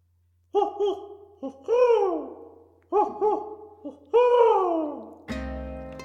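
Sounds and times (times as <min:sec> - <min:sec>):
owl hooting: 0:00.5 - 0:05.0.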